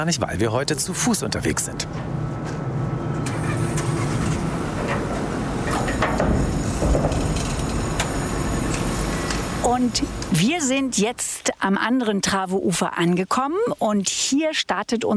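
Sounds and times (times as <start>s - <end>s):
speech: 0.0s - 2.6s, 9.7s - 15.1s
car ferry engine rumble crossing the Trave river: 0.0s - 11.5s
faint clanks and rattles aboard a car ferry: 3.2s - 9.5s.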